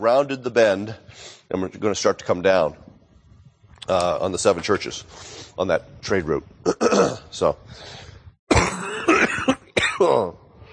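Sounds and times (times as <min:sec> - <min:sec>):
speech: 0:00.0 - 0:02.9, 0:03.9 - 0:08.0, 0:10.0 - 0:10.4
harsh coughing: 0:06.7 - 0:07.3, 0:08.5 - 0:10.3.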